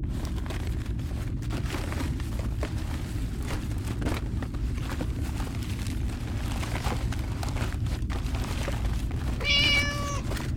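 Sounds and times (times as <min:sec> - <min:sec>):
constant loud low engine or machinery rumble aboard an evacuation ship: 0:00.0 - 0:10.5
cat meowing aboard an evacuation ship: 0:09.1 - 0:10.5.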